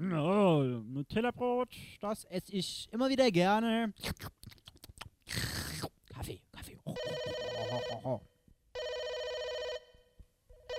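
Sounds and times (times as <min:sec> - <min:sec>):
speech: 0:00.0 - 0:04.4, 0:07.8 - 0:08.3
telephone ringing in electronic bursts: 0:07.0 - 0:08.2, 0:08.8 - 0:10.1.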